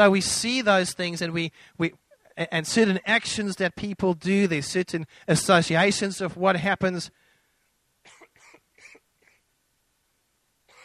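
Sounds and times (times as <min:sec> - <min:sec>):
speech: 0:00.0 - 0:07.2
dry coughs: 0:08.1 - 0:09.0.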